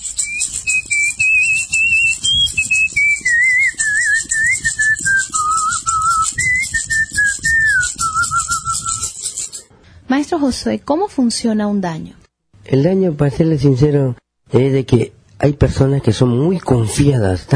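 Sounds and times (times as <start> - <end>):
healer's ritual whistle opening a healing session: 0.0 - 9.6
speech: 10.1 - 17.5.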